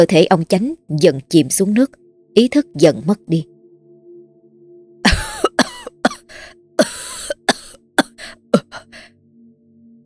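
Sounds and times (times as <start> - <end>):
speech: 0.0 - 3.5
man coughing and choking after nearly drowning: 5.1 - 8.9.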